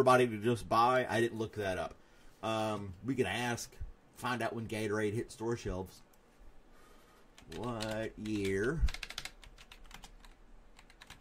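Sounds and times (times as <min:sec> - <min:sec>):
speech: 0:00.0 - 0:06.1, 0:07.5 - 0:09.0
typing on a computer keyboard: 0:07.4 - 0:11.1.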